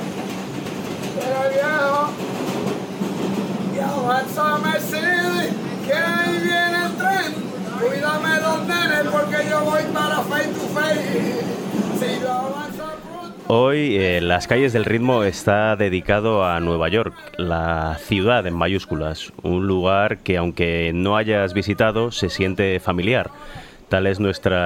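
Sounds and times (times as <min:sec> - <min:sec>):
subway car rumbling: 0:00.0 - 0:24.6
speech: 0:04.1 - 0:05.2, 0:13.5 - 0:24.6.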